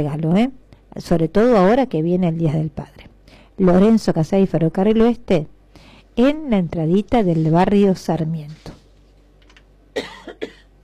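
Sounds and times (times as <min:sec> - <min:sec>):
speech: 0:00.0 - 0:03.0, 0:03.6 - 0:05.5, 0:06.2 - 0:08.8
person coughing: 0:09.9 - 0:10.8.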